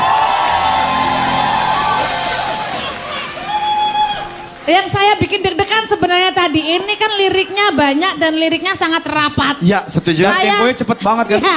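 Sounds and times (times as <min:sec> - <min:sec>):
audience shouted cries: 0:00.0 - 0:04.5
audience cheering and whooping at a live stage show: 0:00.0 - 0:04.7
speech: 0:04.7 - 0:11.5.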